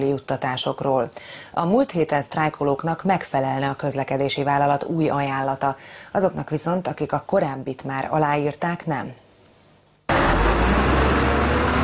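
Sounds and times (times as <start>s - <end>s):
speech: 0.0s - 9.2s
city buses departing from a square in the morning: 10.1s - 11.8s.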